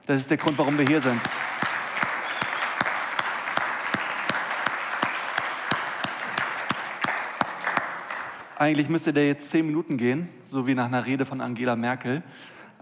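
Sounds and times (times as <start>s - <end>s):
speech: 0.1s - 1.5s, 8.6s - 12.7s
audience applause: 0.2s - 8.8s.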